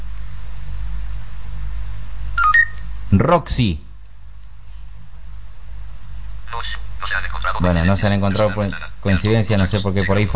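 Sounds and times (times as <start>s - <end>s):
mobile phone hands-free speed-dial key electronic tone: 2.4s - 2.8s
speech: 3.1s - 3.8s, 7.6s - 10.3s.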